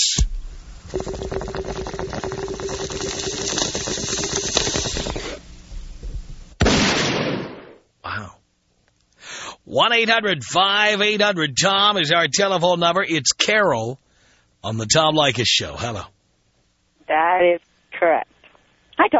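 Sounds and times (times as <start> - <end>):
bong hit hissing and bubbling: 0.2 - 5.6
shotgun blast sound effect: 6.6 - 7.8
speech: 9.8 - 14.0, 14.6 - 16.1, 17.1 - 18.3.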